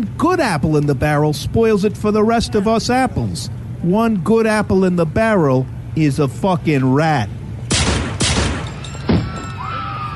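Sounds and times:
speech: 0.0s - 7.4s
gunshots: 7.7s - 9.4s.

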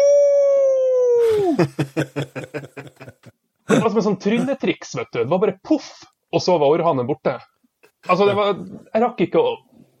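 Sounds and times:
voice imitating a dog's wolf-like howl: 0.0s - 1.6s
speech: 1.6s - 3.1s, 4.0s - 9.7s
laughter: 1.6s - 3.8s.

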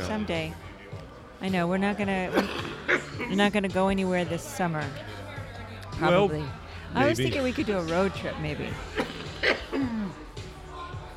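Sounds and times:
speech: 0.0s - 0.7s, 1.4s - 5.1s, 6.0s - 10.2s
sharp cough: 2.3s - 3.4s, 8.9s - 10.2s
throaty vocal sound: 8.8s - 10.3s.

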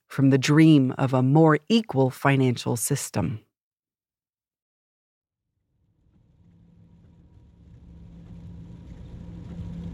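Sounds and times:
speech: 0.2s - 3.5s
low car engine and road rumble on a highway: 5.7s - 9.9s.

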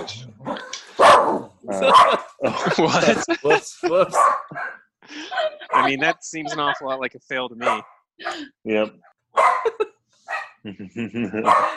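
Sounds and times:
speech: 0.0s - 0.7s, 2.8s - 11.7s
dogs barking: 0.0s - 3.1s, 4.0s - 4.9s, 5.7s - 6.8s, 7.6s - 8.4s, 9.3s - 10.6s, 11.3s - 11.7s
laughter: 1.7s - 7.2s, 9.6s - 10.0s, 10.7s - 11.7s.

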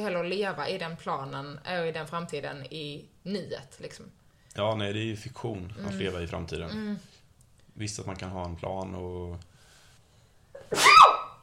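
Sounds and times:
speech: 0.0s - 7.2s, 7.8s - 9.5s, 10.7s - 11.1s
person sneezing: 10.6s - 11.2s.

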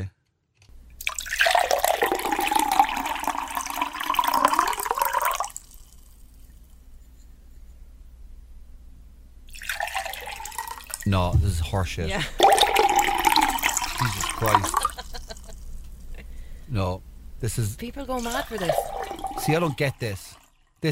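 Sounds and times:
water poured in a splashy stream: 1.0s - 6.6s, 9.5s - 11.1s, 12.4s - 15.6s, 18.2s - 20.6s
speech: 11.1s - 12.4s, 14.0s - 14.9s, 16.7s - 20.9s
laughter: 11.1s - 15.6s.

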